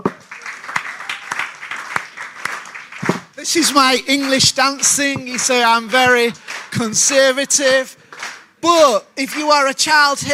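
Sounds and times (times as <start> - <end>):
group clapping hands in a loose steady rhythm: 0.0 - 10.0
speech: 3.4 - 8.0, 8.6 - 10.3.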